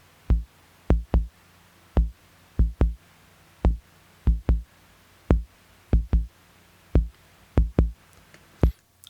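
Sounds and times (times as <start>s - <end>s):
faint steady hum: 0.0s - 9.0s
deep bass drum created by a Moog synthesizer thumping: 0.3s - 1.3s, 2.0s - 3.0s, 3.7s - 4.7s, 5.3s - 6.3s, 7.0s - 8.0s.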